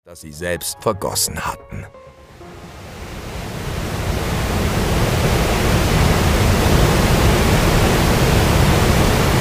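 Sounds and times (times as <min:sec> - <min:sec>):
speech: 0:00.1 - 0:02.1
roaring waterfall: 0:02.4 - 0:09.3.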